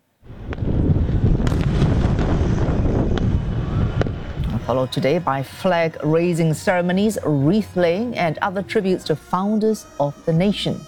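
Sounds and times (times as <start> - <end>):
fireworks exploding at midnight for Pakistan's independence: 0.2 - 6.8
speech: 4.7 - 10.8.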